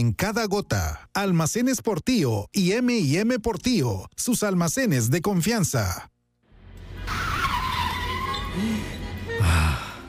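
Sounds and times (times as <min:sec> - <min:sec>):
speech: 0:00.0 - 0:06.1, 0:08.6 - 0:09.7
car tires skidding screech braking hard: 0:06.8 - 0:09.9.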